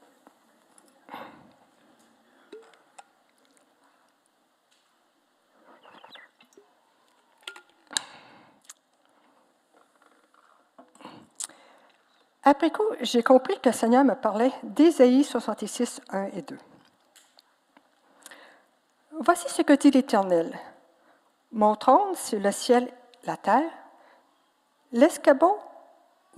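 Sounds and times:
person taking a small sip of water: 2.4s - 4.3s, 5.6s - 12.0s
speech: 12.5s - 16.7s, 19.2s - 20.7s, 21.5s - 23.8s, 24.9s - 25.7s.

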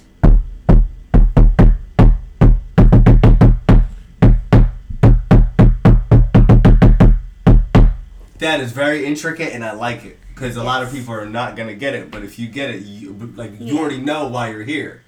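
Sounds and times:
knuckles knocking a secret knock pattern on a hard surface: 0.0s - 8.3s
speech: 8.4s - 15.0s.

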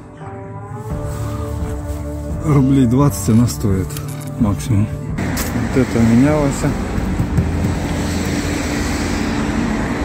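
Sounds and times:
car engine humming as the car drives away: 1.0s - 10.0s
speech: 2.4s - 6.9s.

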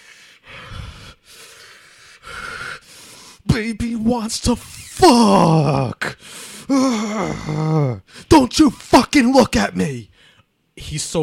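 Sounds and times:
voice imitating heavy breathing through an oxygen mask: 0.0s - 3.5s, 5.0s - 8.2s
speech: 3.6s - 10.1s, 10.8s - 11.2s.

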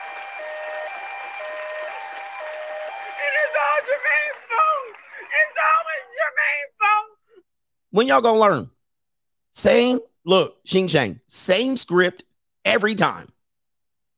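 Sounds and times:
audience applauding: 0.0s - 6.6s
excited audience voices and whoops: 0.0s - 7.1s
speech: 3.8s - 4.4s, 7.9s - 8.8s, 9.6s - 13.3s.

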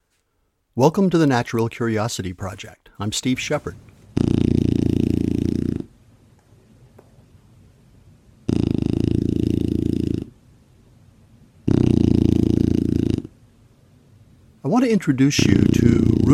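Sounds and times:
speech: 0.8s - 4.4s, 14.8s - 16.3s
Shar Pei dog snoring loudly: 4.2s - 5.9s, 8.4s - 10.4s, 11.6s - 13.4s, 15.4s - 16.3s.

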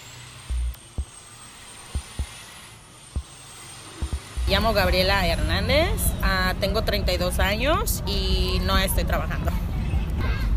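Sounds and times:
diesel trucks passing in street traffic in Little Village: 0.0s - 10.5s
short heavy thuds: 1.9s - 2.3s, 4.0s - 5.0s
speech: 4.5s - 9.6s.

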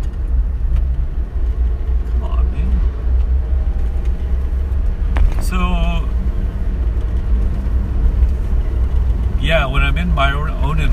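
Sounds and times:
heavy truck rumbling down the road: 0.0s - 10.9s
man speaking: 5.4s - 6.1s, 9.4s - 10.9s.

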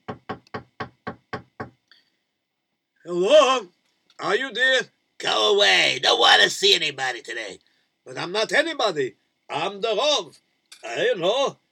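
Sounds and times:
knocking on a wooden door: 0.0s - 1.8s
speech: 3.1s - 11.6s.

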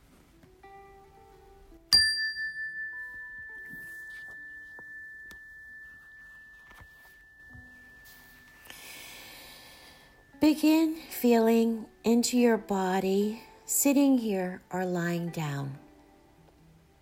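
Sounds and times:
meditation chime ringing: 1.9s - 10.9s
speech: 10.4s - 15.8s.

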